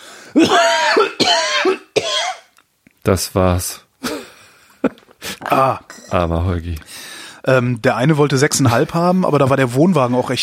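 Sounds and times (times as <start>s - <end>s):
brief quiet breath: 0.0s - 0.4s, 6.8s - 7.4s
speech: 0.3s - 1.1s, 3.1s - 3.8s, 4.8s - 10.4s
harsh raspy coughs: 0.4s - 2.5s.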